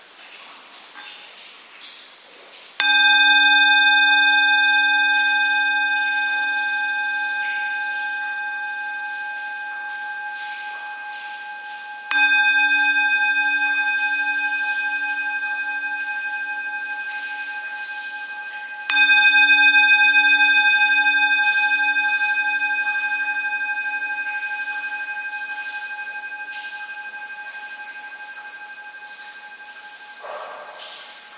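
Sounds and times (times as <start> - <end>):
single bell struck at a retreat: 2.8 - 8.6, 12.1 - 17.1, 17.8 - 31.3.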